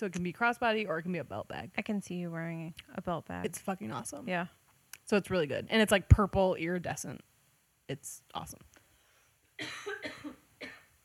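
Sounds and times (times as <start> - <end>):
speech: 0.0 - 7.3, 7.9 - 8.7, 9.6 - 10.2
person coughing harshly: 9.6 - 11.0.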